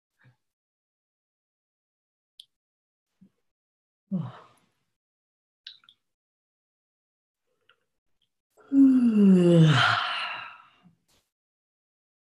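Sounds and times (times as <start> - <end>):
person yawning: 8.7 - 10.0.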